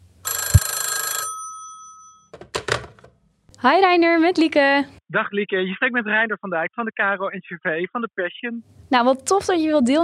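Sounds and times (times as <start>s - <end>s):
telephone ringing on an outgoing call: 0.2s - 2.3s
speech: 3.6s - 10.0s.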